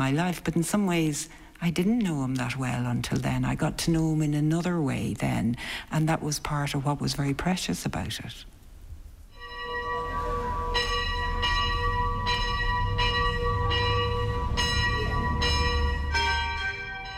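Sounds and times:
speech: 0.0 - 8.6
church bell tolling: 9.3 - 17.1
low rumble: 9.8 - 17.1.

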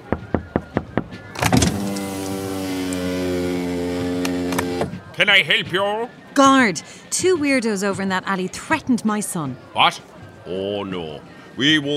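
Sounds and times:
electric window motor rolling the glass down: 1.4 - 5.0
speech: 5.2 - 11.9.

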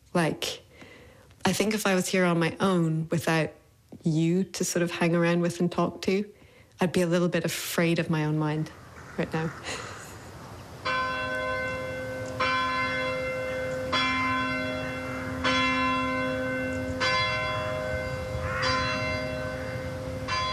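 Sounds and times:
speech: 0.2 - 0.6, 1.5 - 9.9
church bell tolling to call people to the choir stalls: 10.8 - 20.5.

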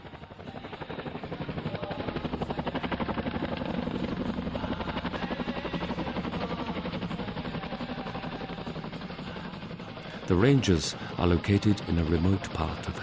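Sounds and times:
Chinook helicopter twin rotors chopping overhead: 0.0 - 13.0
speech: 10.3 - 13.0.

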